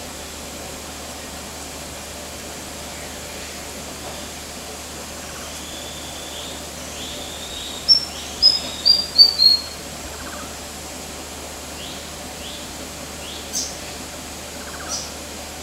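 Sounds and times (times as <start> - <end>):
steady background hiss: 0.0 - 15.6
White-throated fantail thin high whistles at Kinabalu Park HQ in Borneo: 7.8 - 9.8.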